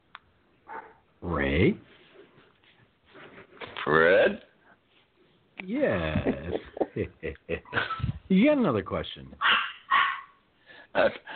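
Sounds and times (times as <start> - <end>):
dogs barking and yapping: 0.6 - 1.1, 9.4 - 10.4
speech: 1.2 - 1.9, 8.4 - 9.5, 11.0 - 11.3
laughter: 5.8 - 8.3.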